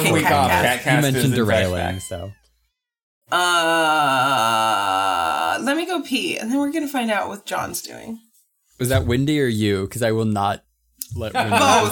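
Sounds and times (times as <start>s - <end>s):
speech: 0.1s - 2.4s, 3.3s - 5.0s, 5.6s - 11.9s
cat meowing: 1.5s - 2.7s.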